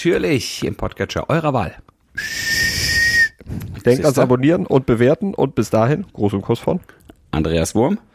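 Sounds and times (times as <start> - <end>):
speech: 0.0 - 2.5, 3.4 - 8.1
man whistling a thin breathy note: 2.2 - 3.4.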